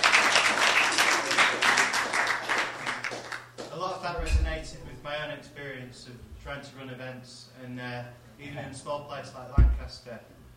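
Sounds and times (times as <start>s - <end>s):
audience applauding: 0.0s - 3.7s
speech: 5.4s - 10.4s.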